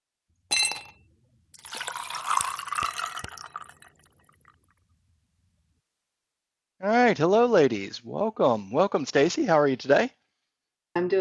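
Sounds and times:
glass clink: 0.5s - 4.2s
liquid poured steadily into a glass with rising pitch: 1.6s - 4.7s
speech: 6.8s - 10.2s, 11.0s - 11.1s.

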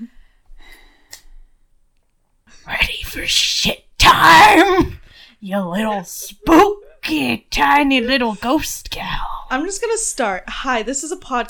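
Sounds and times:
person taking a long deep breath: 0.2s - 1.5s
speech: 3.2s - 11.4s.

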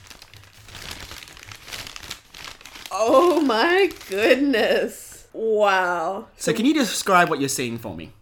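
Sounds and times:
paper wrapping crinkling as it is unrolled: 0.0s - 4.6s
speech: 3.0s - 8.1s.

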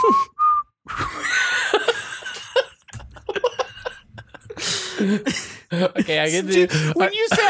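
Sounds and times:
person attempting to whistle a tune: 0.0s - 1.3s
person laughing and giggling: 0.9s - 7.4s
speech: 5.0s - 7.4s.

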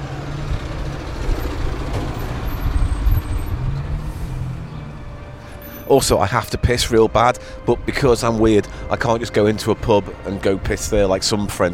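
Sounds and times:
broad road noise: 0.0s - 11.7s
heavy truck engine drone: 0.0s - 11.7s
air brakes hissing: 4.0s - 4.6s
speech: 5.9s - 11.7s.

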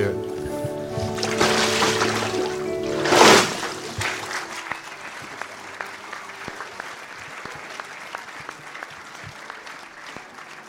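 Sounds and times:
water splashing during a baptism by immersion: 0.9s - 4.7s.

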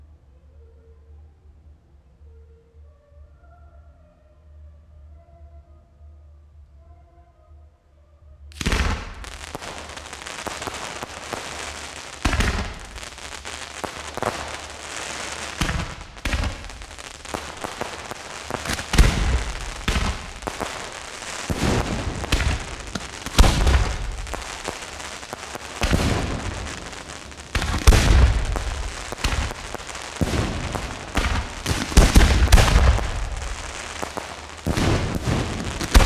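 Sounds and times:
fireworks bursting with sharp cracks and booming explosions: 8.6s - 36.0s.

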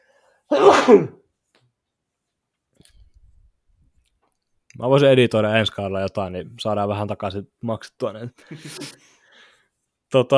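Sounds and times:
sharp loud breathy sneeze: 0.5s - 1.2s
speech: 0.5s - 1.2s, 4.8s - 9.1s, 10.1s - 10.3s.

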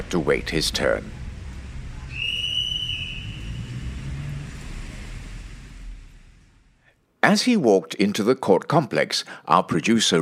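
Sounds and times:
steady low rumble of passing car traffic: 0.0s - 7.0s
speech: 0.1s - 1.2s, 7.3s - 10.1s
guard blowing long shrill whistle blast: 2.1s - 3.9s.

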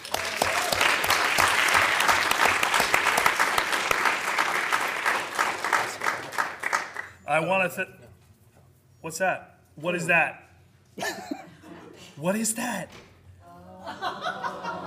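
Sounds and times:
live crowd applause with rapid clapping: 0.0s - 7.2s
speech: 7.3s - 8.0s, 9.0s - 10.4s, 12.2s - 13.1s
laughter: 11.0s - 12.2s, 13.4s - 14.8s.

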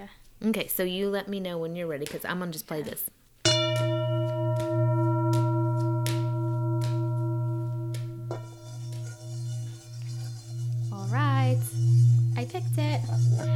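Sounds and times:
speech: 0.0s - 3.2s
singing bowl ringing: 3.5s - 13.5s.

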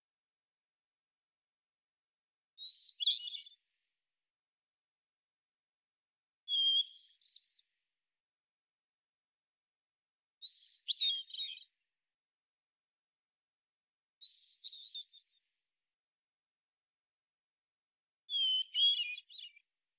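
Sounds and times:
hermit thrush Catharus guttatus singing in the Pacific Northwest, Washington: 2.6s - 3.7s, 6.5s - 7.7s, 10.4s - 11.8s, 18.3s - 19.6s.

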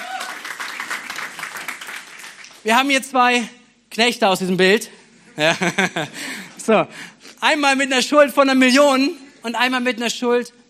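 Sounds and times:
crowd applauding: 0.0s - 2.8s
speech: 2.6s - 10.6s
laughter: 5.3s - 6.4s.

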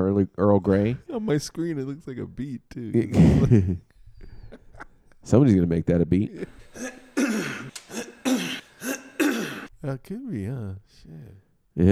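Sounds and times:
speech: 0.0s - 3.9s, 5.2s - 7.0s, 9.8s - 11.9s
raspy throat-clearing coughs: 3.1s - 3.7s, 6.7s - 9.7s.

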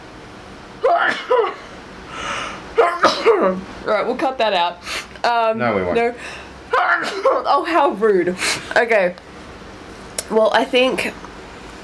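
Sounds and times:
person sneezing: 0.8s - 1.7s, 6.7s - 7.4s
person gasping: 2.1s - 2.6s
speech: 3.4s - 9.3s, 10.3s - 11.2s.

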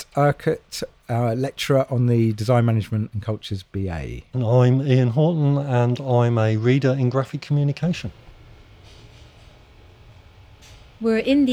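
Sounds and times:
faint hiss: 0.0s - 11.5s
low hum of air conditioning: 0.0s - 11.5s
speech: 0.2s - 8.2s, 11.0s - 11.5s
soft rustles: 8.0s - 11.5s.

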